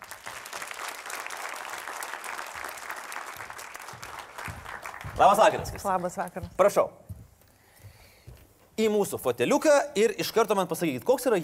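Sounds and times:
talk show audience applauding a guest: 0.0s - 6.2s
speech: 5.2s - 7.0s, 8.8s - 11.4s.

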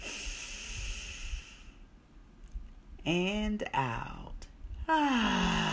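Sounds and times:
deep breath drawn in during a guided breathing exercise: 0.0s - 1.8s
speech: 3.0s - 4.2s, 4.9s - 5.6s.

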